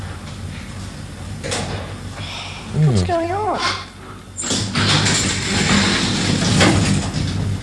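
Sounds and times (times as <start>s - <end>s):
speech: 2.8s - 3.8s
lift doors sliding open with mechanical rumble and whir: 4.4s - 7.6s.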